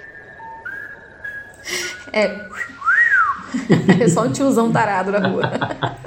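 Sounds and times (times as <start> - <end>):
eerie drawn-out whistle: 0.0 - 3.6
speech: 2.1 - 2.7, 3.5 - 6.0
laughter: 3.4 - 6.0.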